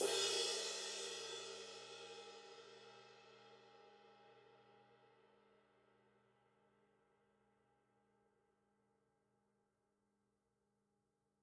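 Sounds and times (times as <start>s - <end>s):
20-inch rock ride crash cymbal: 0.0s - 1.6s.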